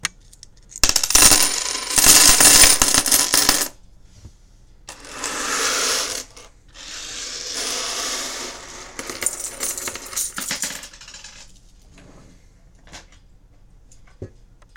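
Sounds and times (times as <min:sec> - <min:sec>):
coins dropped and slid: 0:00.7 - 0:03.8, 0:04.9 - 0:11.6.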